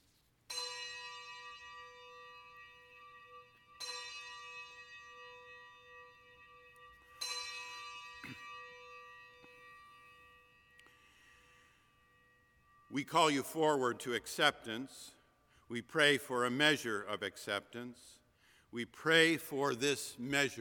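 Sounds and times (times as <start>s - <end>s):
bell tolling in remembrance: 0.5s - 14.8s
speech: 13.0s - 20.5s.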